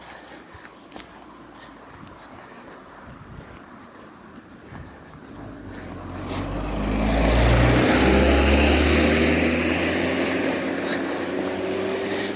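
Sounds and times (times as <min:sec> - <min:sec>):
car driving past: 0:05.3 - 0:12.3.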